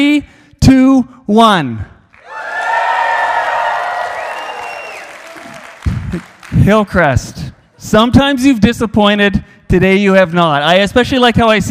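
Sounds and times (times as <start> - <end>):
speech: 0.0 - 1.9, 6.1 - 11.6
large crowd cheering with whoops and shouts: 2.1 - 7.1
large crowd applauding: 2.1 - 7.5.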